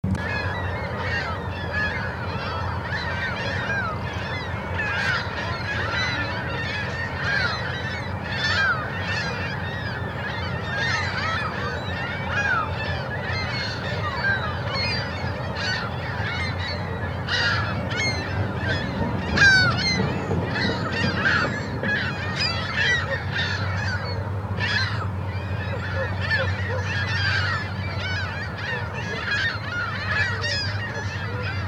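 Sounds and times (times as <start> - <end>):
birds in Columbia Park, Kennewick, Washington: 0.1 - 31.6.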